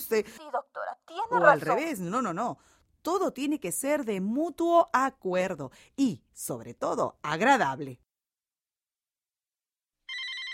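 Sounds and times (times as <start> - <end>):
speech: 0.1 - 8.0
telephone ringing with another incoming call: 10.1 - 10.5.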